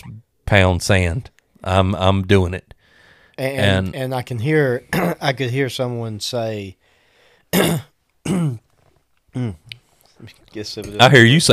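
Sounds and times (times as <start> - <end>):
speech: 0.5 - 2.8, 3.4 - 6.8, 7.5 - 8.6, 9.3 - 11.5
person clearing throat as if something is caught in it: 4.9 - 5.2, 7.5 - 8.7, 9.3 - 9.7.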